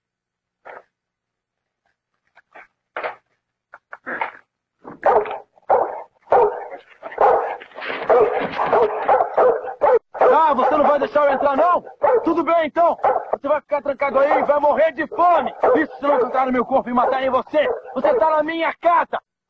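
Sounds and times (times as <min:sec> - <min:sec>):
dog barking behind a door: 0:05.0 - 0:13.5, 0:14.1 - 0:18.5
speech: 0:11.0 - 0:19.2.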